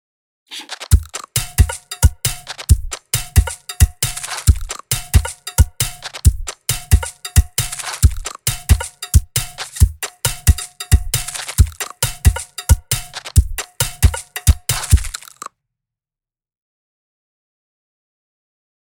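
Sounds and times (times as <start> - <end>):
Pringles drumkit: 0.5 - 15.5.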